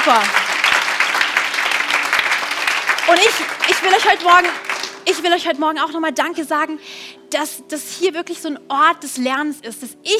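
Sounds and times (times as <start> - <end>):
audience applauding: 0.0 - 5.2
speech: 0.1 - 0.4, 3.1 - 10.1.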